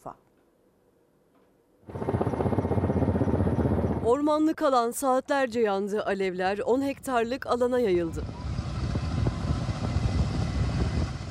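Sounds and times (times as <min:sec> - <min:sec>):
speech: 0:00.0 - 0:00.3, 0:04.1 - 0:08.4
firefighting helicopter rotors throbbing over a wildfire: 0:01.8 - 0:04.8, 0:06.9 - 0:11.2
firefighting aircraft engines droning over a wildfire in Menemen Izmir Turkey: 0:01.9 - 0:04.1, 0:08.0 - 0:11.2.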